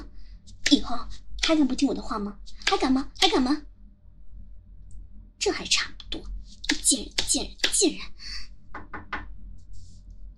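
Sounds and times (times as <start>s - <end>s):
speech: 0.7s - 3.7s, 5.4s - 8.5s
knocking on a door: 8.7s - 9.3s.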